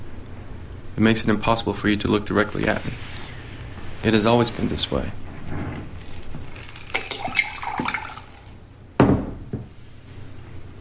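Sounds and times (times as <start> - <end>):
low steady noise: 0.0 - 10.7
speech: 1.0 - 3.1, 4.0 - 5.6
water trickling and splashing: 5.9 - 8.6
sharp splash or drip of water: 6.4 - 8.6.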